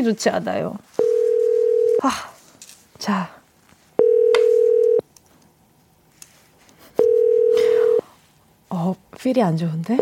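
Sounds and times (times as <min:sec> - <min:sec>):
speech: 0:00.0 - 0:00.9, 0:02.0 - 0:02.3, 0:03.0 - 0:03.4, 0:08.8 - 0:10.0
telephone line tone on a radio call-in line: 0:01.0 - 0:02.0, 0:04.0 - 0:05.0, 0:07.0 - 0:08.0.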